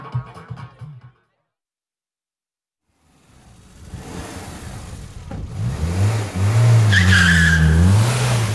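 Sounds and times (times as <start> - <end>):
car engine revving: 2.9 - 8.5
car tyres squealing as car speeds away: 6.4 - 8.5.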